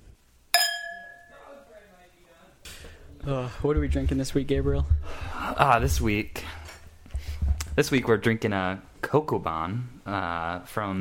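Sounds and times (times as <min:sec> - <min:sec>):
wine glasses clinking in a toast: 0:00.6 - 0:01.4
speech: 0:03.2 - 0:06.6, 0:07.8 - 0:10.9.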